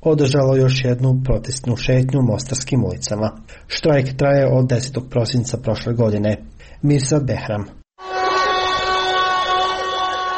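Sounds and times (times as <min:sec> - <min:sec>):
speech: 0:00.0 - 0:07.8
sirens at a street protest by striking health workers: 0:08.0 - 0:10.3
whistles at a street protest by striking health workers: 0:08.0 - 0:10.3.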